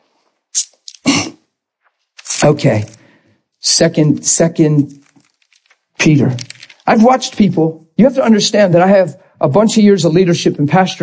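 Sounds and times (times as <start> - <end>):
person sneezing: 0.6 - 1.5
speech: 2.4 - 3.0, 3.6 - 5.0, 6.0 - 11.0.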